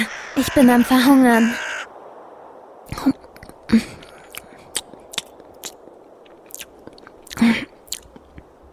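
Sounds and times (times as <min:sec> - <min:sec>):
speech: 0:00.4 - 0:01.6, 0:03.0 - 0:03.9
person chewing a dry piece of bread: 0:04.1 - 0:08.4.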